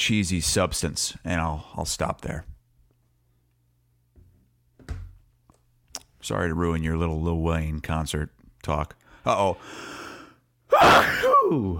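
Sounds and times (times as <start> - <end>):
speech: 0.0 - 2.5, 6.2 - 10.0, 10.7 - 11.7
wind-up inhale before a sneeze: 9.6 - 10.4
loud explosive sneeze: 10.7 - 11.7.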